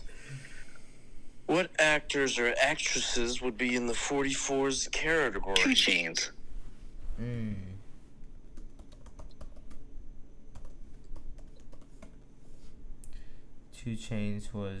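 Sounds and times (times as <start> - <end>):
speech: 1.5 - 6.4, 7.2 - 7.7, 13.8 - 14.7
typing on a computer keyboard: 8.6 - 9.9, 10.5 - 12.3.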